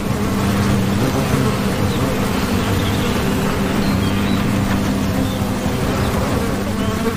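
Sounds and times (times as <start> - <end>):
wasps buzzing around a paper nest in a dead tree hollow: 0.0 - 7.1.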